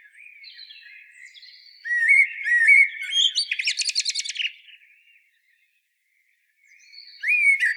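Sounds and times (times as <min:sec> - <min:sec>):
common blackbird Turdus merula singing: 0:00.1 - 0:04.8, 0:06.7 - 0:07.7.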